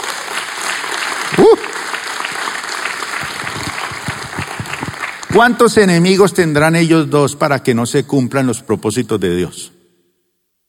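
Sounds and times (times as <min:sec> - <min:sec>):
audience applauding: 0:00.0 - 0:06.0
person crying out above clapping: 0:01.4 - 0:01.7
speech: 0:05.3 - 0:09.8.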